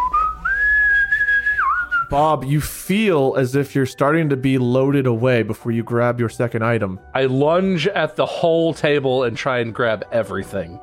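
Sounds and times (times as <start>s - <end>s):
person whistling a single sustained note: 0.0s - 2.2s
speech: 2.1s - 10.8s.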